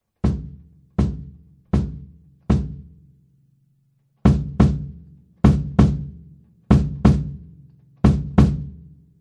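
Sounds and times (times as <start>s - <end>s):
kick drum recorded at the port: 0.2s - 3.0s, 4.2s - 8.8s.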